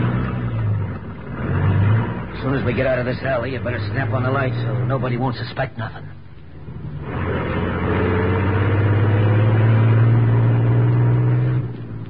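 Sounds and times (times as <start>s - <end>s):
huge truck engine rumbling pulling out of an alley: 0.0s - 12.0s
speech: 2.4s - 6.2s.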